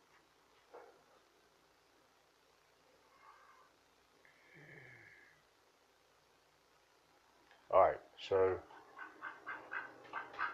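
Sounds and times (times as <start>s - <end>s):
speech: 7.7s - 8.7s
duck quacking: 8.9s - 10.5s.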